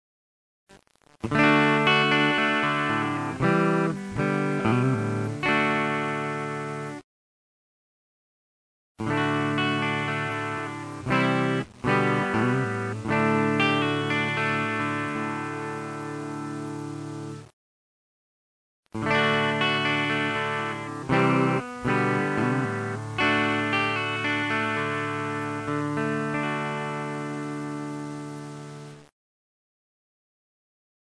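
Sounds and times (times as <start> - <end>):
clean chorus guitar: 1.0 - 7.0, 9.0 - 17.5, 19.0 - 29.0.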